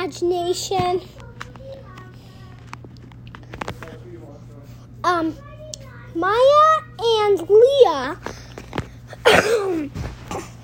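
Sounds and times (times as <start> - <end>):
speech: 0.1 - 1.2, 5.0 - 5.5, 6.1 - 8.3
sharp cough: 9.2 - 10.6.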